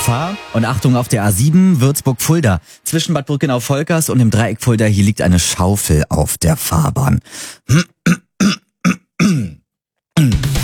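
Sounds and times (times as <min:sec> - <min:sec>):
speech: 0:00.1 - 0:08.6
throat clearing grunts: 0:07.6 - 0:10.5.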